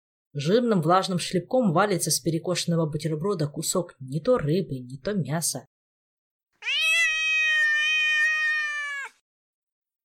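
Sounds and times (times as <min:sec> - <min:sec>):
speech: 0:00.4 - 0:05.8
cat meowing: 0:06.6 - 0:09.2.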